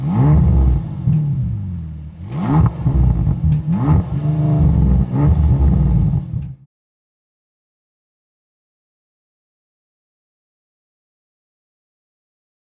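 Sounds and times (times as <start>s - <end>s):
659 hp engine of a four-seat Bentley GTC starting, idling and revving: 0.0s - 6.6s.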